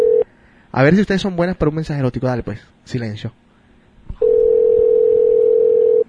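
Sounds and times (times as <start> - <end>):
telephone line tone: 0.0 - 0.2, 4.2 - 6.0
speech: 0.7 - 3.4.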